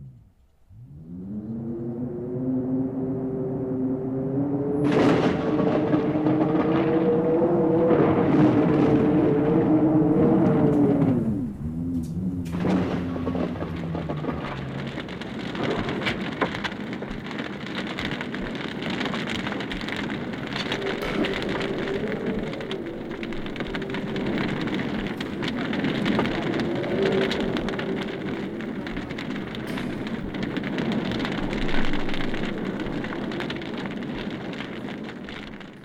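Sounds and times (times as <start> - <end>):
deep rumble of thunder rolling: 0.0 - 35.8
heavy rain pattering in a raging storm: 0.0 - 35.8
low continuous roar of a raging storm: 0.0 - 35.8.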